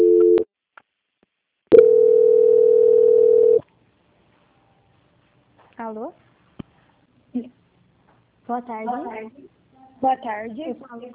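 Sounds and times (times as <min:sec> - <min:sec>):
brief telephone tone during call transfer: 0:00.0 - 0:00.4, 0:01.7 - 0:03.6
speech: 0:05.9 - 0:06.3, 0:07.4 - 0:07.6, 0:08.5 - 0:11.1.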